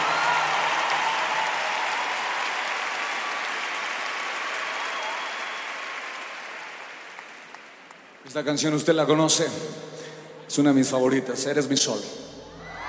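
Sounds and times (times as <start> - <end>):
audience applauding: 0.0 - 8.2
speech: 8.3 - 12.3.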